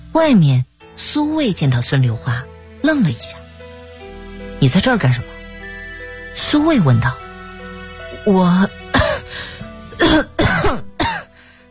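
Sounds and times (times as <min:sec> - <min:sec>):
speech: 0:00.2 - 0:03.4, 0:04.6 - 0:05.4, 0:06.4 - 0:07.2, 0:08.2 - 0:08.8
person coughing hard: 0:08.9 - 0:09.3, 0:10.0 - 0:11.3.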